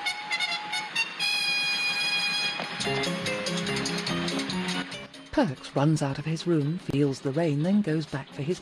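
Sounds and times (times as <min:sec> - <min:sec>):
steam train whistle: 0:00.0 - 0:03.0
steam train rumbling and clattering while approaching: 0:00.0 - 0:08.6
speech: 0:02.8 - 0:03.3, 0:05.4 - 0:08.6.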